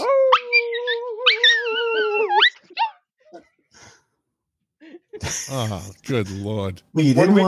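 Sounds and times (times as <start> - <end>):
dog howling: 0.0 - 2.6
speech: 5.3 - 7.4.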